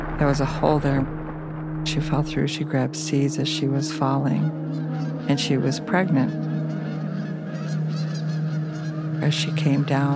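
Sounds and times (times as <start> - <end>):
steady low hum: 0.0 - 3.2
speech: 0.2 - 1.2, 1.8 - 6.8, 9.2 - 10.1
flock of geese honking: 4.7 - 10.1.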